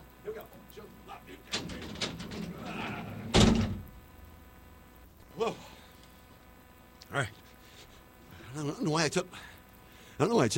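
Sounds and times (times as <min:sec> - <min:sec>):
heavy studio door creaking and rattling open: 0:01.4 - 0:04.0
speech: 0:05.4 - 0:05.7, 0:07.2 - 0:07.4, 0:08.6 - 0:09.5, 0:10.2 - 0:10.5.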